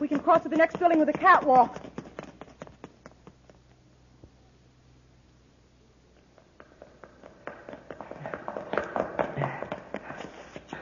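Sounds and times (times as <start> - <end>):
footsteps of people running up a staircase into a building: 0.0 - 3.3, 6.4 - 10.8
speech: 0.2 - 1.8.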